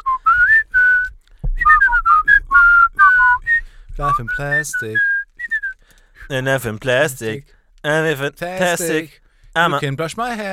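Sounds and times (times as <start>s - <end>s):
person whistling a catchy pop melody: 0.0s - 5.8s
soft low thump: 0.4s - 4.5s
speech: 4.1s - 5.1s, 6.3s - 10.5s.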